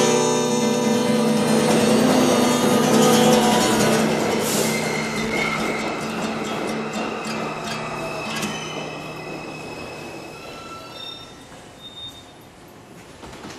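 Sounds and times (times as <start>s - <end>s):
sharp metallic clacks: 0.0s - 10.2s
subway express train rumbling on rails: 0.0s - 11.8s
subway train wheel squeals: 0.0s - 12.6s.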